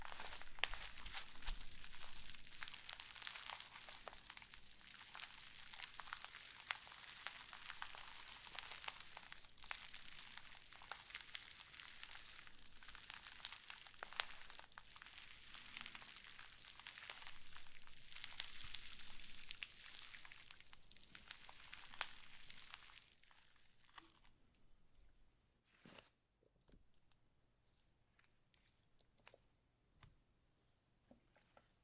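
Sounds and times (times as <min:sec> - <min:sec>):
slime squished and kneaded with wet crackles and squelches: 0:00.0 - 0:24.4.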